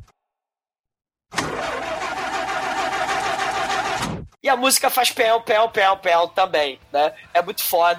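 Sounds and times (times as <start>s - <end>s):
car engine chugging roughly and dying: 1.4s - 4.1s
speech: 4.5s - 7.9s.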